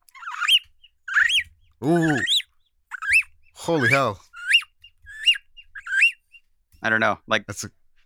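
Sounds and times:
speech: 1.8 - 2.3, 3.7 - 4.2, 6.8 - 8.0
person whistling an imitation of a bird call: 1.8 - 2.4, 3.0 - 6.2.

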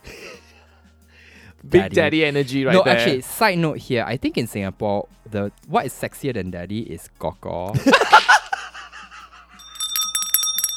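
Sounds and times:
speech: 1.6 - 8.4
laughter: 7.7 - 9.5
bell sound effect ringing: 9.6 - 10.7.

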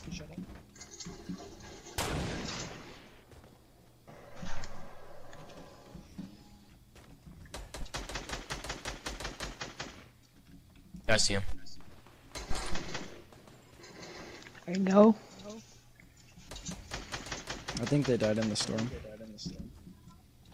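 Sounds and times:
rapid run of sharp, evenly spaced shots in a video game: 2.0 - 3.2, 7.5 - 10.2, 12.3 - 13.5, 16.5 - 19.2
gunfire in a video game: 2.0 - 3.3, 7.5 - 10.1, 12.3 - 13.6, 16.5 - 19.2
speech: 11.1 - 11.5, 14.7 - 15.2, 17.9 - 19.1
players talking over the game sounds: 11.1 - 11.9, 14.6 - 15.7, 17.7 - 19.8.

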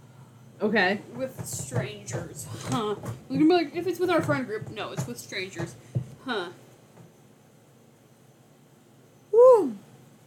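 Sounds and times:
speech: 0.6 - 6.6
person yawning: 9.3 - 9.9.

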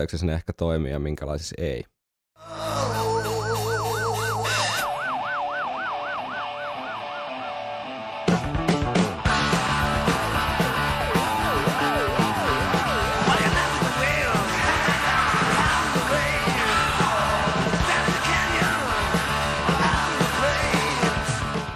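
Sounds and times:
speech: 0.0 - 2.6
wailing siren effect: 2.5 - 8.6, 10.7 - 15.5
music beat: 2.8 - 16.3
dense music track with sustained synth tones: 2.8 - 21.7.

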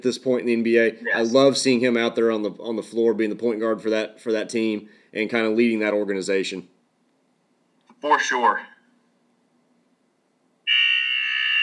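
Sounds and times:
speech: 0.0 - 6.7, 8.0 - 8.7
basketball game end-of-quarter buzzer: 10.7 - 11.6.

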